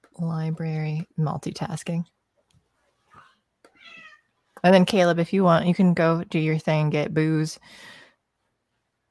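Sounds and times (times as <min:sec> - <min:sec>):
speech: 0:00.2 - 0:02.2, 0:04.6 - 0:08.0
female tortoiseshell cat meowing: 0:03.7 - 0:04.3.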